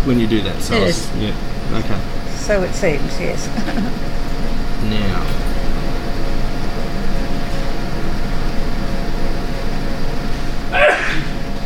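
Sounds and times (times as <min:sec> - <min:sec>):
speech: 0:00.0 - 0:04.2, 0:04.8 - 0:05.5
low rumbling hum: 0:00.0 - 0:11.6
person sneezing: 0:10.8 - 0:11.4.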